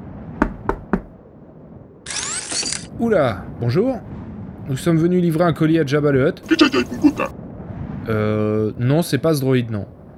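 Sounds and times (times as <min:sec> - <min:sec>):
heavy resonant knocking on a large door: 0:00.4 - 0:01.2
harsh mechanical whirring: 0:02.1 - 0:02.9
speech: 0:03.0 - 0:07.4, 0:08.0 - 0:10.0
laughter: 0:06.4 - 0:07.3.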